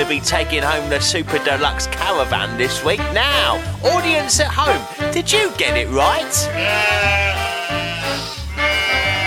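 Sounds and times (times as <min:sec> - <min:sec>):
speech: 0:00.1 - 0:07.4
sheep bleating: 0:06.5 - 0:09.2.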